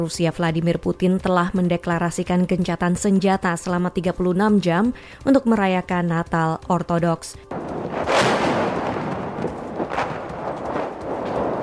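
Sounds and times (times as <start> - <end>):
speech: 0.0 - 7.7
heavy booming artillery fire: 7.5 - 11.6.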